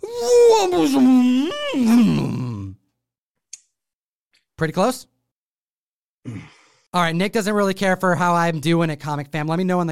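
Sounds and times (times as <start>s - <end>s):
voice imitating a character combusting into flames: 0.0s - 2.8s
speech: 0.2s - 2.3s, 4.6s - 5.1s, 6.2s - 9.9s.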